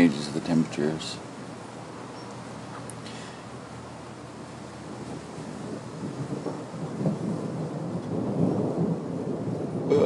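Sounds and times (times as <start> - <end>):
speech: 0.0 - 1.3
steady rain hissing: 0.0 - 10.0
deep thunder rumbling: 3.6 - 10.0.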